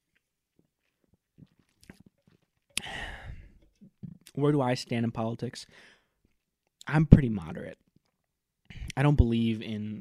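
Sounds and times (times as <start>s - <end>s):
person sipping a drink: 1.4s - 4.3s
speech: 4.4s - 6.0s, 6.9s - 7.8s, 9.0s - 9.9s.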